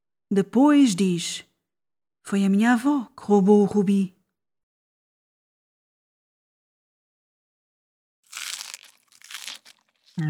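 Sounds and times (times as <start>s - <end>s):
speech: 0.3s - 1.5s, 2.3s - 4.2s
crunchy chewing of an acorn: 8.3s - 10.2s.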